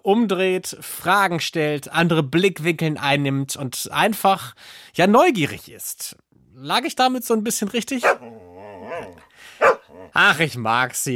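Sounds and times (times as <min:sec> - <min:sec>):
speech: 0:00.0 - 0:11.1
dog barking: 0:08.0 - 0:08.3, 0:09.6 - 0:09.9
dog whiny growling: 0:08.0 - 0:10.2.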